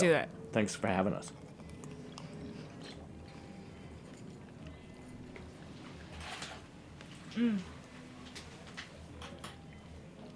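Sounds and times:
speech: 0.0 - 1.4, 7.4 - 7.7
wet chewing of a raw oyster with a pearl: 1.3 - 3.1.

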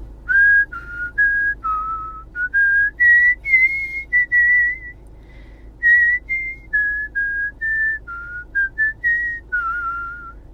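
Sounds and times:
woman whistling a melody solo: 0.3 - 5.0, 5.8 - 10.4.

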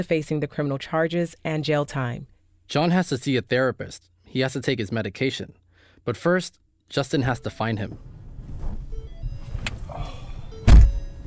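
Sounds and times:
speech: 0.0 - 8.2
person climbing into a white Prius: 7.8 - 11.2
faint rustles: 7.9 - 10.5.

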